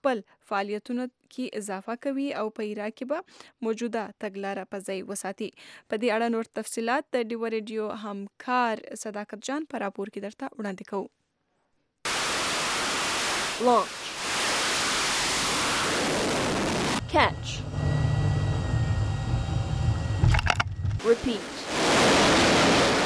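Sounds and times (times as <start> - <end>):
speech: 0.0 - 11.2, 13.6 - 14.0, 17.1 - 17.9, 21.0 - 22.0
bomber jets flying off a US Navy aircraft carrier in the Mediterranean: 12.1 - 23.0
rattling humming: 17.4 - 21.0.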